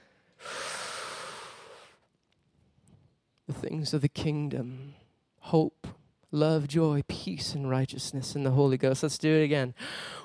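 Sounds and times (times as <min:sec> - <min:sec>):
person inhaling deeply: 0:00.0 - 0:02.0, 0:09.8 - 0:10.2
speech: 0:03.6 - 0:10.2.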